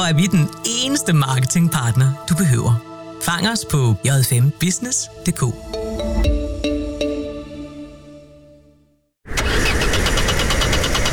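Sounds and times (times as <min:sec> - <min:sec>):
speech: 0:00.0 - 0:06.5
car engine cranking without catching: 0:09.3 - 0:11.1.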